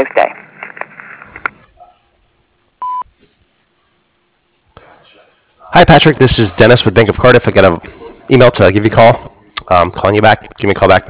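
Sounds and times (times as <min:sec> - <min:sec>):
noise: 0:00.0 - 0:11.0
answering machine beep: 0:02.8 - 0:03.1
speech: 0:05.8 - 0:11.0.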